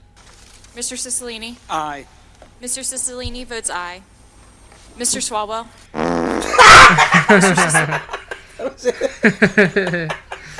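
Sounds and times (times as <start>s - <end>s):
speech: 0.8s - 4.1s, 5.0s - 10.2s
brief loud fart: 5.9s - 6.7s
snickering laughter: 6.4s - 10.5s.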